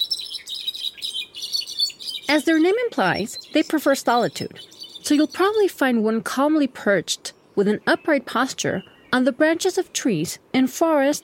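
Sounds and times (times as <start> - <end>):
brown-backed solitaire singing: 0.0 - 5.8, 7.2 - 10.3
speech: 2.3 - 11.2.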